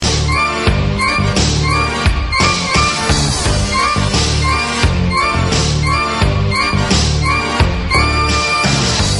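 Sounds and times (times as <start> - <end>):
iPhone drums SMS ringtone: 0.1 - 9.1.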